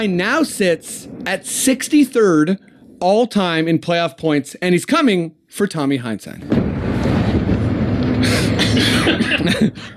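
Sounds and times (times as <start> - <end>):
steady low rumble: 0.0 - 3.0, 6.4 - 9.9
speech: 0.0 - 6.6, 8.2 - 9.9
person coughing raspy stress coughs: 8.2 - 9.9.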